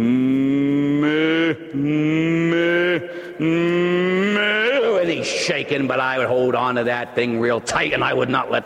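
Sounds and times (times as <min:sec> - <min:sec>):
voice imitating a bull calf mooing: 0:00.0 - 0:05.0
speech: 0:05.1 - 0:08.6.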